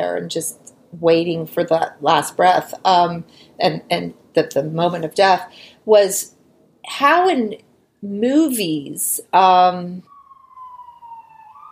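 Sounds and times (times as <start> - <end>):
speech: 0.0 - 10.1
emergency vehicle siren passing outside: 10.0 - 11.7.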